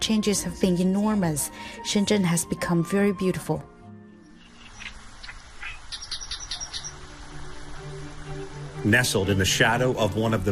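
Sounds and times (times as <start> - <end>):
speech: 0.1 - 3.7, 8.8 - 10.5
migratory birds chirping in a mangrove: 4.2 - 9.3.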